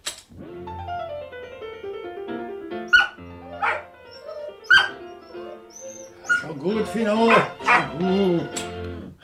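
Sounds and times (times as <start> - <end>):
record of a concerto for three pianos: 0.4 - 9.1
dog yipping: 2.9 - 6.5, 7.2 - 7.9
dog howling along to music: 2.9 - 8.0
speech: 6.5 - 8.6.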